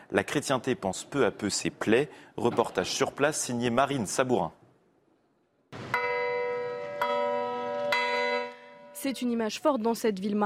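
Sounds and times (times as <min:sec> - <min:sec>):
speech: 0:00.1 - 0:04.6, 0:09.0 - 0:10.4
bronze church bells from Normandy ringing in Mosul: 0:05.9 - 0:09.3.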